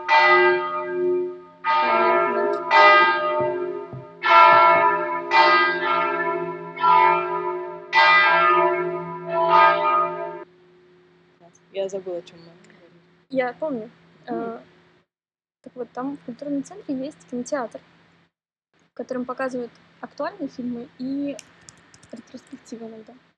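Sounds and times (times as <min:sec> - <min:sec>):
church bells ringing in a steady peal: 0:00.0 - 0:10.4
speech: 0:11.9 - 0:12.7, 0:13.3 - 0:14.7, 0:15.6 - 0:17.9, 0:19.0 - 0:23.3.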